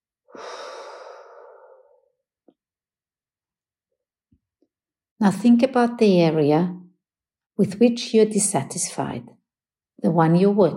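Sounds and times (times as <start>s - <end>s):
deep breathing in and out: 0.3s - 2.2s
speech: 5.2s - 6.8s, 7.6s - 9.4s, 10.0s - 10.7s.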